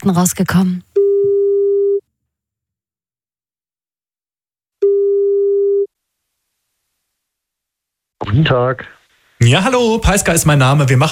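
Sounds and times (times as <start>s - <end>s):
speech: 0.0s - 0.9s, 8.3s - 11.0s
telephone ringback tone during outgoing radio station call: 1.0s - 2.0s, 4.8s - 5.9s.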